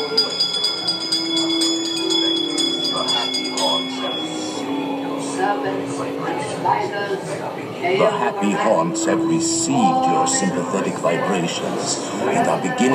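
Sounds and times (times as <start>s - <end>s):
small bell ringing: 0.0s - 5.2s
faint murmuring voices: 0.0s - 12.9s
low eerie drone: 0.0s - 12.9s
speech: 6.6s - 12.9s.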